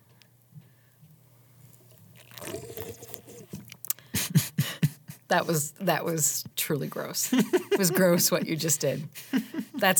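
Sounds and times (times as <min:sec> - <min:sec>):
loud slurping sip of a latte with butter on top: 0:01.9 - 0:03.8
speech: 0:05.3 - 0:09.9
laughter: 0:07.3 - 0:09.9.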